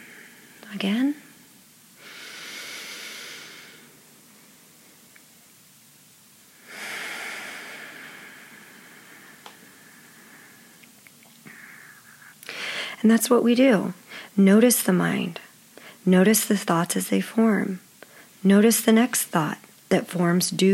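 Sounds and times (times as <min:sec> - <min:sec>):
soft hiss: 0:00.0 - 0:20.7
speech: 0:00.7 - 0:01.3, 0:13.0 - 0:15.4, 0:16.0 - 0:17.8, 0:18.4 - 0:20.7
deep belly breathing in and out: 0:02.0 - 0:04.1, 0:06.6 - 0:10.8, 0:11.4 - 0:13.0.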